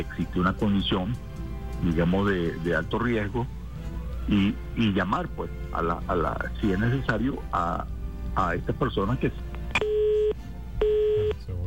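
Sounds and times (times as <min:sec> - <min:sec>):
speech: 0:00.0 - 0:03.6, 0:04.3 - 0:09.4
telephone busy tone after a dropped phone call: 0:09.8 - 0:11.3.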